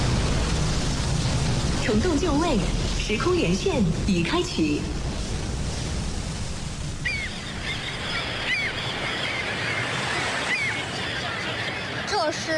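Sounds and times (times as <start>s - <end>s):
sea waves rushing at a naval harbor: 0.0s - 12.5s
wind at a naval harbor: 0.0s - 12.5s
speech: 1.9s - 5.0s, 12.3s - 12.5s
sharp bird calls: 7.0s - 12.1s.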